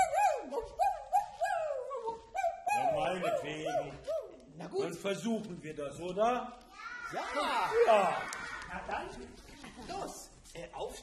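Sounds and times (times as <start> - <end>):
voice imitating a dog howling: 0.0 - 4.4
speech: 3.2 - 11.0.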